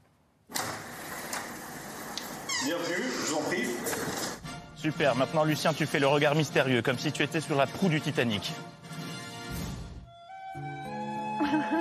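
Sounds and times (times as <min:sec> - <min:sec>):
door opening: 0:00.5 - 0:04.4
speech: 0:02.6 - 0:04.2, 0:04.8 - 0:08.8
laughter: 0:11.4 - 0:11.7.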